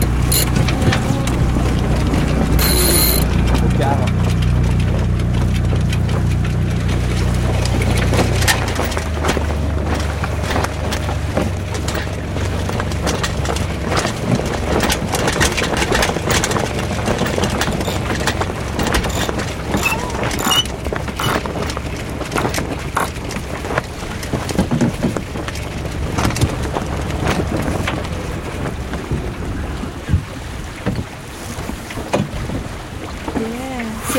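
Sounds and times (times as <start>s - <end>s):
sailboat winch ratcheting while hoisting the mainsail: 0.0s - 4.2s, 14.6s - 23.4s
small sailboat engine idling at low revs: 0.0s - 30.8s
light wind: 0.0s - 34.1s.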